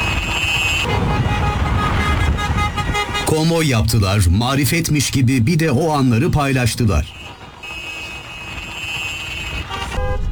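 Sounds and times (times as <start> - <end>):
car horns honking in a vehicle convoy: 0.0 - 3.7, 7.1 - 10.3
traffic rumble: 0.0 - 10.3
speech: 3.3 - 7.2.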